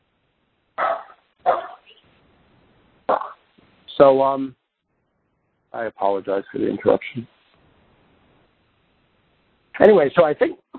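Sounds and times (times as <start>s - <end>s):
dog barking in short sharp bursts: 0.8s - 2.0s, 3.1s - 3.4s
speech: 4.0s - 4.6s, 5.7s - 7.4s, 9.8s - 10.6s.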